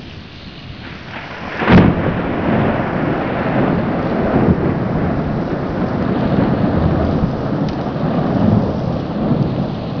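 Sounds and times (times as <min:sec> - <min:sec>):
lightning strike at medium distance: 0:00.0 - 0:09.9.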